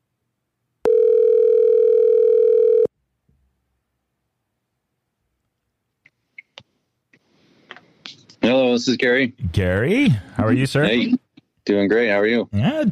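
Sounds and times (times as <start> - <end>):
telephone ringing tone as a phone call is placed: 0.8 - 2.9
speech: 8.8 - 12.9.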